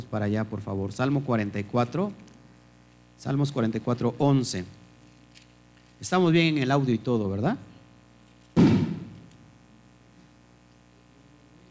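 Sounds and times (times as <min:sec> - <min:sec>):
speech: 0:00.1 - 0:02.3, 0:03.2 - 0:04.8, 0:06.0 - 0:07.7
boom of a firecracker at a street procession: 0:08.6 - 0:09.3.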